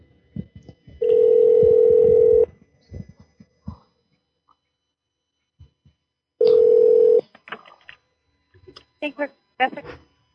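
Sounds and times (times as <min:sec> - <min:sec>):
telephone line dial tone: 0:01.0 - 0:02.5, 0:06.4 - 0:07.2.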